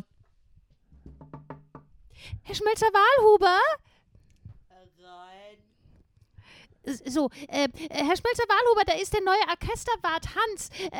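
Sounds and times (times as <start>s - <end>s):
firm knocking on a wooden door: 0.9s - 2.0s
speech: 2.2s - 3.9s, 6.8s - 10.9s.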